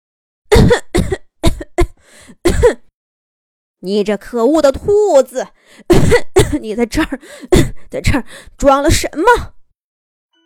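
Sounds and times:
person acting out harsh violent hacking coughs: 0.5s - 2.9s, 5.9s - 7.9s
raspy wheezing breath: 2.0s - 2.4s, 5.6s - 5.9s, 7.2s - 8.6s
speech: 3.8s - 9.6s.

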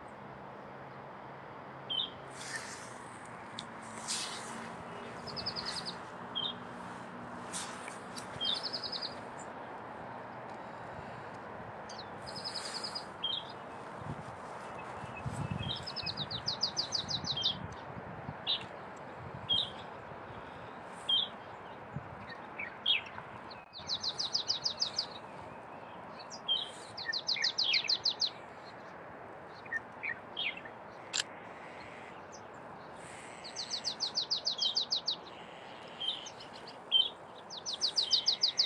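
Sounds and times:
steady low hiss of wind or noise: 0.0s - 38.6s
marsh tits calling: 4.1s - 6.7s, 7.5s - 9.6s, 11.9s - 17.6s, 21.0s - 38.6s.

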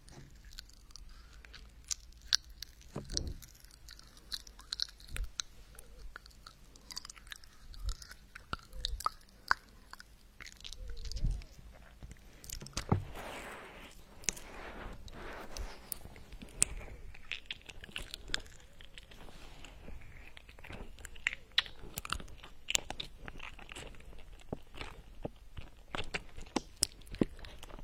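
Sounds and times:
popping candy crackling inside a mouth: 0.0s - 13.1s, 15.0s - 27.8s
soft low thumps of the mouth moving: 2.9s - 3.5s, 11.1s - 13.4s.

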